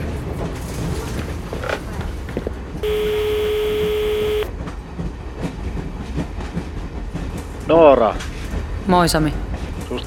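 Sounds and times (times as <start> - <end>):
moving passenger train rumble in Ukraine: 0.0 - 10.0
sustained electronic tone: 2.8 - 4.5
speech: 7.7 - 8.3, 8.9 - 10.0.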